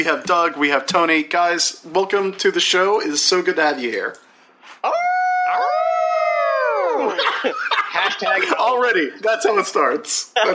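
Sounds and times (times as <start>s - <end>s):
speech: 0.0s - 4.2s, 7.4s - 10.5s
human voices mimicking a dog's howl: 4.8s - 7.2s
laughter: 6.9s - 9.1s.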